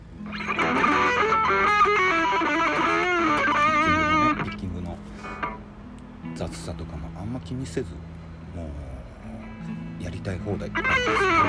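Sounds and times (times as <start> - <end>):
distorted electric guitar played solo and fast with bends and vibrato: 0.2 - 4.6, 10.8 - 11.4
speech: 7.5 - 8.1, 10.3 - 11.4.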